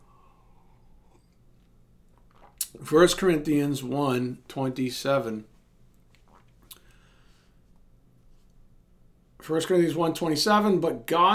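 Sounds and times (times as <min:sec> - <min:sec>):
quiet room hum: 0:00.0 - 0:11.3
person sipping water: 0:00.5 - 0:02.8, 0:06.0 - 0:07.1
swallowing: 0:01.0 - 0:02.8, 0:06.1 - 0:06.9
soft wet mouth smacks: 0:02.2 - 0:02.8, 0:06.0 - 0:06.9
speech: 0:02.7 - 0:05.5, 0:09.5 - 0:11.3.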